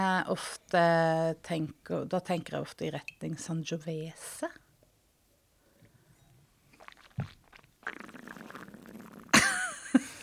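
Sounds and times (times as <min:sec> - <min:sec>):
speech: 0:00.0 - 0:04.6
mouth smack: 0:06.8 - 0:09.3
wet slurp while tasting wine: 0:06.8 - 0:09.3.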